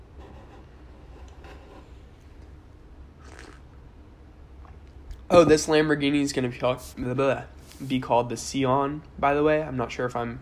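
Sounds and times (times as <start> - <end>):
slurping and mouth noises: 3.2 - 3.7
person sipping hot coffee: 3.2 - 3.8
speech: 5.3 - 10.4.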